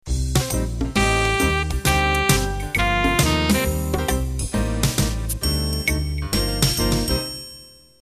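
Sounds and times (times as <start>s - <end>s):
club jazz intro: 0.1s - 7.3s.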